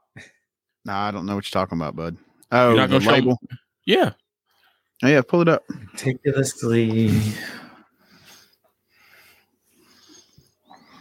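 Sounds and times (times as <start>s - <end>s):
speech: 0.2s - 4.2s, 5.0s - 7.6s
heavy breathing into microphone: 7.0s - 10.9s.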